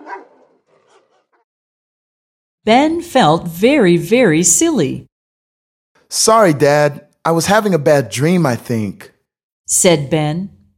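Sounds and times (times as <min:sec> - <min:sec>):
old dog barking outside in a garden: 0:00.0 - 0:01.5
speech: 0:02.6 - 0:05.1, 0:06.1 - 0:09.1, 0:09.7 - 0:10.6.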